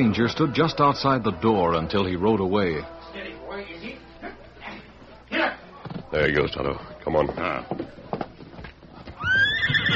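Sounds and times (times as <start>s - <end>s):
speech: 0.0s - 4.0s, 6.2s - 7.9s
horse neighing outside a town cafe: 9.2s - 9.9s.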